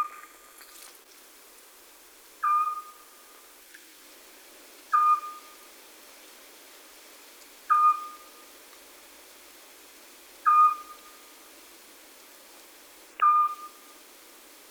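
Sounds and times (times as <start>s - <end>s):
Eurasian scops owl uttering a monotonous short whistle: 2.4s - 3.0s, 4.9s - 5.6s, 7.7s - 8.4s, 10.4s - 11.2s, 13.2s - 13.9s.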